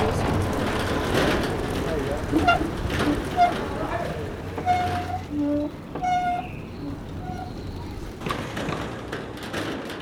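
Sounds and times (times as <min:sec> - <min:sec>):
voices chattering on a busy street in Marseille: 0:00.0 - 0:08.4
steady low rumble of traffic: 0:00.0 - 0:10.0.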